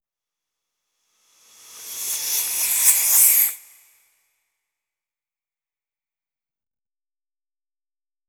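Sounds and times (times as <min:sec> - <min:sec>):
hiss: 0:01.3 - 0:04.0.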